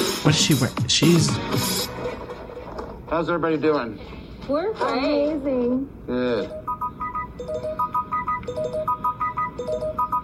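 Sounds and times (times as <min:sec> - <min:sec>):
speech: 0:00.2 - 0:01.8, 0:03.1 - 0:06.6
phone ringtone playing a short electronic melody: 0:06.4 - 0:10.2.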